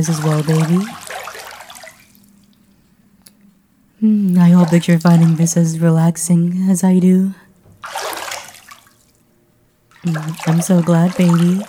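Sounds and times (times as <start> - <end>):
speech: 0.0 - 1.0, 4.0 - 8.1, 10.0 - 11.6
water splashing and trickling in a bath: 0.0 - 2.6, 4.4 - 5.7, 7.8 - 9.2, 9.9 - 11.6
single soft water drip: 0.0 - 3.4, 4.3 - 5.6, 7.8 - 9.2, 9.9 - 11.6.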